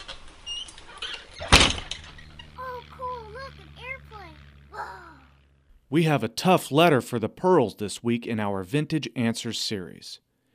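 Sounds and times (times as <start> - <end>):
door shutting with a loud thud: 1.1 - 2.5
speech: 5.9 - 10.2.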